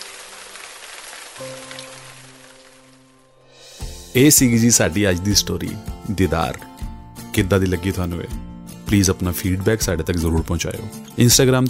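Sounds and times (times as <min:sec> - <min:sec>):
rain falling: 0:00.0 - 0:03.2
speech: 0:01.4 - 0:01.7, 0:04.2 - 0:06.7, 0:07.4 - 0:11.6.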